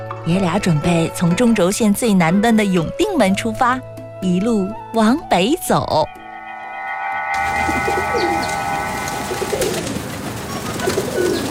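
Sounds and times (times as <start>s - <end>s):
speech: 0.2s - 6.2s
wings of a large flock of pigeons rustling overhead in Beijing: 7.4s - 11.4s.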